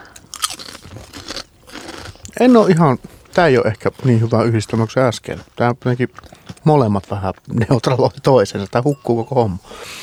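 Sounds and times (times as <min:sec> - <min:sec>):
person chewing lentil chips: 0:00.0 - 0:07.9
speech: 0:02.4 - 0:10.0.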